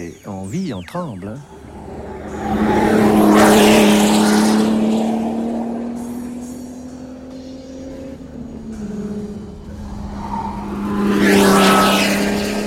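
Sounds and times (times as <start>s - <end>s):
speech: 0.0s - 1.6s
Formula One race car engine screaming while exiting a corner under load: 1.5s - 12.6s.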